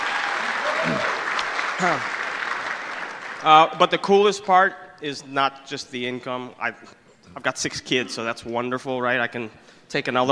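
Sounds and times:
people whooping: 0:00.0 - 0:02.1
crowd applauding: 0:00.0 - 0:03.9
speech: 0:01.8 - 0:02.2, 0:03.4 - 0:10.2.

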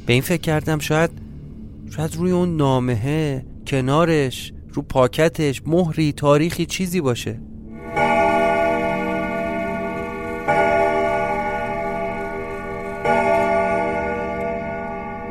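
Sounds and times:
speech: 0:00.1 - 0:01.2, 0:01.9 - 0:08.1
clock chiming: 0:07.8 - 0:15.3.

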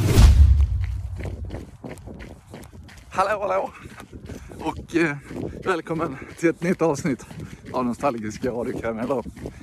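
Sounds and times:
heavy low thump: 0:00.0 - 0:01.7
person running up a hill on a forest trail: 0:00.3 - 0:09.6
speech: 0:03.2 - 0:04.0, 0:04.6 - 0:09.4.

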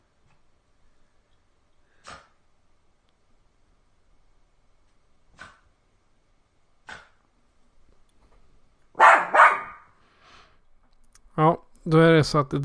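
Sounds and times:
male bichon frise dog barking: 0:09.0 - 0:09.9
speech: 0:11.9 - 0:12.6.

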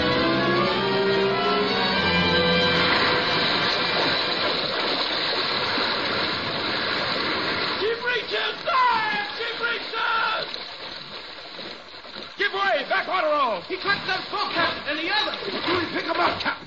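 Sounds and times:
water surging as a whale surfaces: 0:00.0 - 0:16.6.

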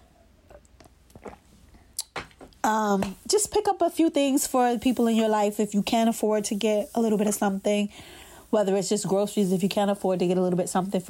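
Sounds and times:
person sipping and swallowing water: 0:00.3 - 0:02.2
speech: 0:02.7 - 0:11.0.

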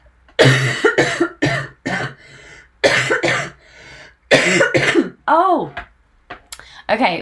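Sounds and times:
person coughing harshly: 0:00.4 - 0:03.6, 0:04.3 - 0:05.2
strained throaty wheeze: 0:02.1 - 0:02.8, 0:03.4 - 0:04.2
speech: 0:06.9 - 0:07.1.

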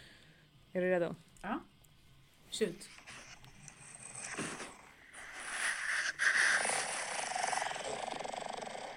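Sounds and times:
speech: 0:00.7 - 0:01.7, 0:02.5 - 0:03.2
person snoring with raspy rumbling breath: 0:03.8 - 0:08.9.

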